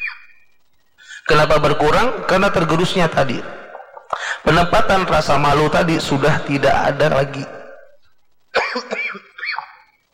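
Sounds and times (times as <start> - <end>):
speech: 1.3 - 3.6, 4.4 - 7.6
person coughing during a religious talk: 8.6 - 9.8.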